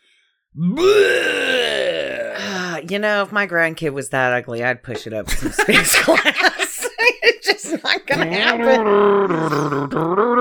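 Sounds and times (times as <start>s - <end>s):
deep guttural creature roar sound effect: 0.6s - 2.8s, 8.6s - 10.4s
speech: 0.6s - 10.4s
laughter: 5.2s - 10.1s.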